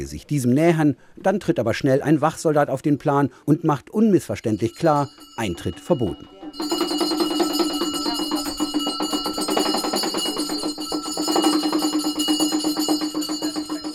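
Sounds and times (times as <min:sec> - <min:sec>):
speech: 0:00.0 - 0:06.8
shrill continuous clatter of ritual bells in a temple: 0:04.4 - 0:13.9
rapid rhythmic ritual hand drumming in a temple: 0:06.6 - 0:13.9.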